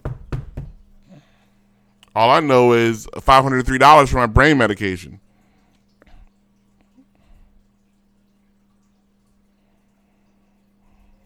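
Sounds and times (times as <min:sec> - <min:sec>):
knocking on a wooden surface: 0:00.0 - 0:00.8
speech: 0:02.2 - 0:05.2.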